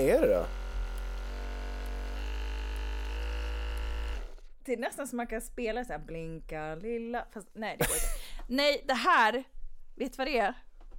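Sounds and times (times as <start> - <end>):
speech: 0.0 - 0.6, 4.7 - 10.7
massage gun motor buzzing: 0.0 - 4.6.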